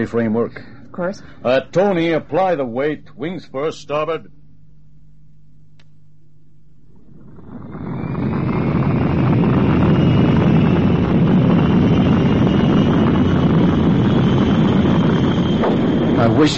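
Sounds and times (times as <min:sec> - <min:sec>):
speech: 0:00.0 - 0:04.4, 0:16.4 - 0:16.5
aircraft engine roaring during test firing: 0:06.8 - 0:16.5.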